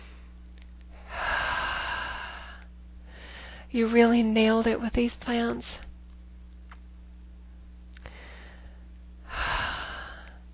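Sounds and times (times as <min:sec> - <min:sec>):
faint steady low hum: 0:00.0 - 0:10.5
slow deep human breath: 0:00.9 - 0:03.7, 0:08.0 - 0:10.4
speech: 0:03.7 - 0:05.9.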